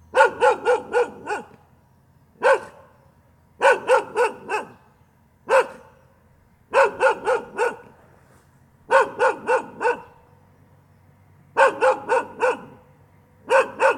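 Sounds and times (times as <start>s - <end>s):
dog barking: 0.1s - 1.6s, 2.4s - 3.0s, 3.6s - 4.9s, 5.5s - 6.0s, 6.7s - 8.0s, 8.9s - 10.2s, 11.6s - 12.8s, 13.4s - 13.9s.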